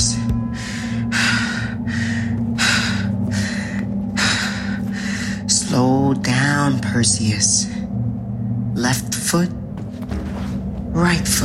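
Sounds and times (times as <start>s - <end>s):
constant low hum: 0.0s - 11.4s
heavy steadying breathing with sharp gasps: 0.4s - 5.5s
speech: 6.1s - 7.7s, 8.8s - 9.6s, 11.0s - 11.4s.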